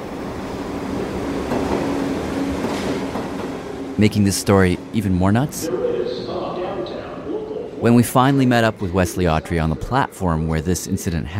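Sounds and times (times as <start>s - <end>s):
subway train rumbling past with wheels on track: 0.0s - 11.3s
speech: 4.0s - 5.8s, 7.8s - 11.3s.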